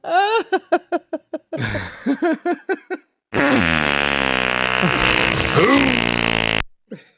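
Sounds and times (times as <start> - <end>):
laughter: 0.2 - 3.0
sputtering fart bursts and drawn-out flatulent blast: 3.4 - 6.6.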